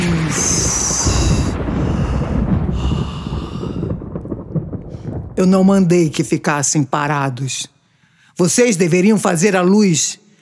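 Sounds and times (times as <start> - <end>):
hissing crackling layer over thunder: 0.0 - 6.4
thunder rumbling: 0.0 - 7.4
speech: 5.4 - 7.8, 8.4 - 10.2.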